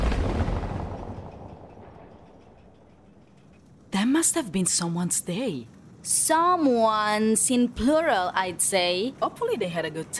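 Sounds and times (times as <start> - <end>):
distant explosion echoing: 0.0 - 3.1
speech: 4.0 - 10.1.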